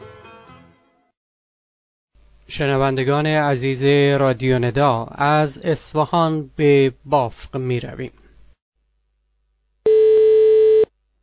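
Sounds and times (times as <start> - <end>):
speech: 2.5 - 8.2
telephone ringing tone of an outgoing call: 9.9 - 10.9.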